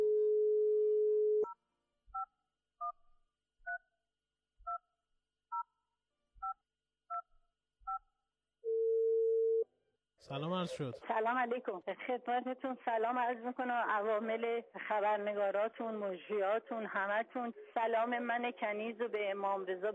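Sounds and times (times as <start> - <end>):
mobile phone dial tone: 0.0 - 1.4, 8.7 - 9.6
speech: 10.3 - 19.9.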